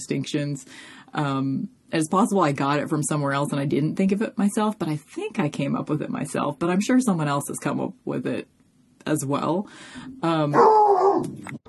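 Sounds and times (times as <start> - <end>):
speech: 0.0 - 11.6
dog barking: 10.6 - 11.4.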